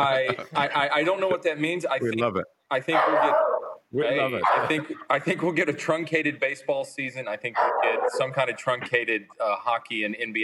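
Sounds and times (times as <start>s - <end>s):
speech: 0.0s - 10.4s
dog barking and yelping: 2.9s - 3.8s, 4.4s - 4.8s, 7.6s - 8.3s.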